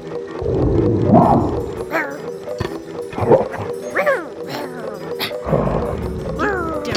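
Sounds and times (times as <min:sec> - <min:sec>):
low rumbling background: 0:00.0 - 0:03.8, 0:05.4 - 0:06.9
bear-sized dog-like monster creatures barking and baying: 0:00.4 - 0:06.9.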